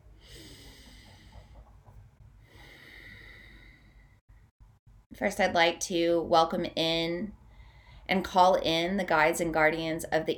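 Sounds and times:
deep breath with long inhale and slow exhale: 0.0s - 4.3s, 7.4s - 8.1s
speech: 5.2s - 7.4s, 8.1s - 10.3s.

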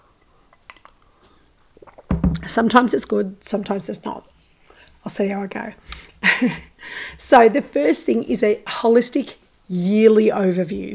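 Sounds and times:
soft swallow: 0.5s - 2.1s
person slurping a drink: 1.8s - 2.1s
speech: 2.5s - 4.4s, 5.0s - 10.9s.

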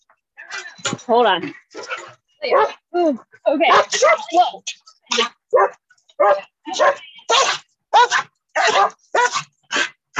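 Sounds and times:
speech: 1.0s - 1.8s, 2.4s - 7.5s
dog barking after being attacked by another dog: 2.5s - 2.8s, 3.7s - 4.2s, 5.2s - 9.9s.

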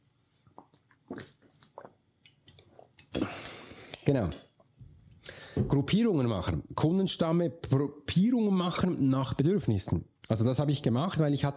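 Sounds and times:
person taking a quick sip of water: 0.4s - 3.9s
speech: 4.1s - 4.5s, 5.6s - 11.5s.

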